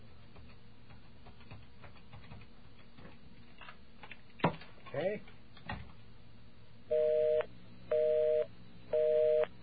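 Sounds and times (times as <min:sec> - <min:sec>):
speech: 0:04.9 - 0:05.4
telephone busy signal after dialing: 0:06.9 - 0:09.5.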